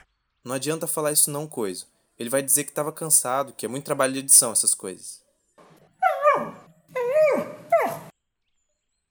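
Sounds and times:
speech: 0.5 - 5.3, 6.4 - 7.0
dog barking: 6.1 - 8.1.

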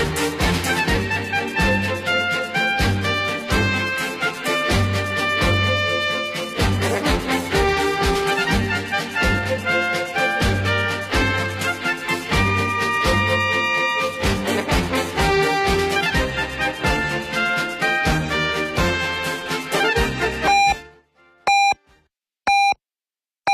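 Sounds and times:
music: 0.0 - 22.0
radio hourly time signal beeps: 20.5 - 20.8, 21.5 - 21.8, 22.5 - 22.8.

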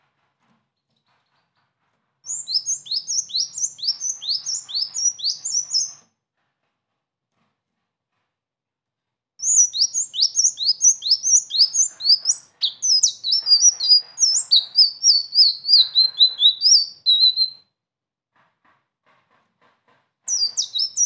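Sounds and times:
sunbird singing rolling song with chips and chattering: 2.3 - 6.0, 9.4 - 17.6, 20.3 - 21.0.

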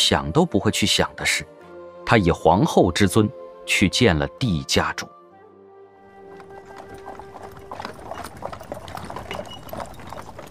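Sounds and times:
speech: 0.0 - 5.2
horse hooves clip-clopping as a horse-drawn carriage comes to a stop: 6.1 - 10.4.

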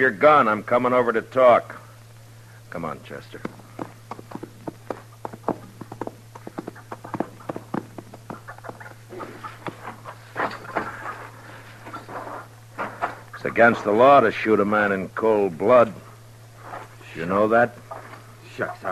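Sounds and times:
speech: 0.0 - 1.8, 2.7 - 3.6, 13.6 - 16.0, 17.2 - 17.8, 18.6 - 18.9
steady low electrical hum: 0.0 - 18.9
horse hooves clip-clopping: 3.3 - 11.1.

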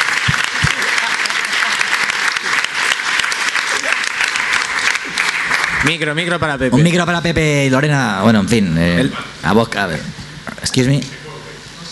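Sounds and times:
audience applauding: 0.0 - 6.4
speech: 5.8 - 10.2, 10.8 - 11.2.

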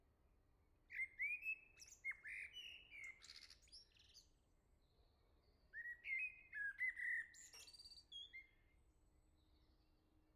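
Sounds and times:
common blackbird song: 0.9 - 4.9, 5.5 - 8.6.

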